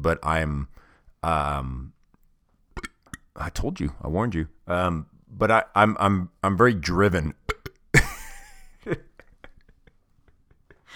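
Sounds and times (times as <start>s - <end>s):
speech: 0.0s - 2.0s, 3.4s - 7.4s, 8.8s - 9.1s
person burping after drinking: 2.8s - 3.3s, 7.4s - 8.3s
mouth clicks: 2.8s - 3.4s, 7.4s - 7.9s.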